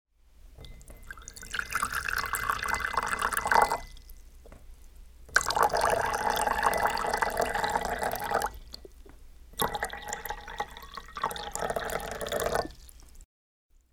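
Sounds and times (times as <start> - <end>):
water pouring into a glass: 0.6 - 4.3, 5.3 - 8.9, 9.6 - 13.2.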